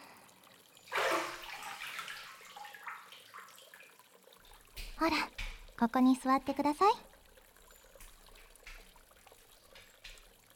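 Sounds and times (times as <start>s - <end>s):
water splashing as a person climbs out of a hot bath: 0.9s - 10.5s
speech: 5.0s - 7.1s.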